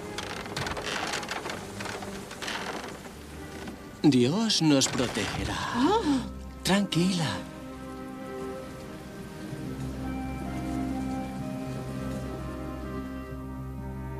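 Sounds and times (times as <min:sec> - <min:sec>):
steady dense rain pattering on a surface: 0:00.0 - 0:13.8
speech: 0:04.0 - 0:07.5.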